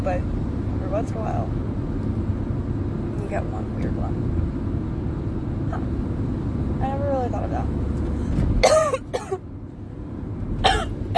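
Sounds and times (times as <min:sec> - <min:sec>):
speech: 0:00.0 - 0:01.7, 0:03.3 - 0:04.6, 0:05.7 - 0:09.1
low engine rumble: 0:00.0 - 0:11.1
person coughing harshly: 0:08.6 - 0:09.4, 0:10.6 - 0:11.1.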